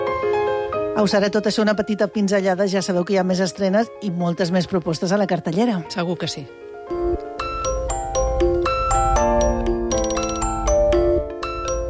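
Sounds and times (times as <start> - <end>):
instrumental theme tune of a TV medical drama: 0.0 - 1.4, 6.4 - 11.8
speech: 1.0 - 6.6.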